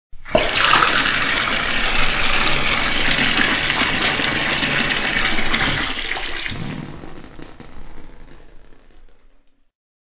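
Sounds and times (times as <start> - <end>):
bath water: 0.2 - 7.0.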